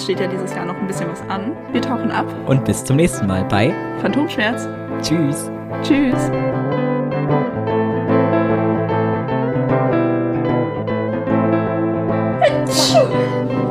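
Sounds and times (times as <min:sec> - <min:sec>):
speech: 0:00.0 - 0:07.4
steady music: 0:00.0 - 0:13.6
sharp sneeze from a person with hay fever: 0:12.4 - 0:13.4.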